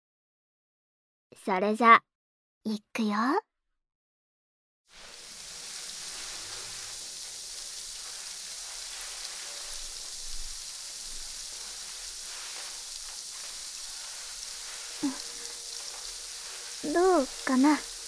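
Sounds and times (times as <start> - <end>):
speech: 1.4 - 3.5, 16.9 - 17.9
carbonated shampoo foam fizzing and crackling on a person's scalp: 4.9 - 18.0.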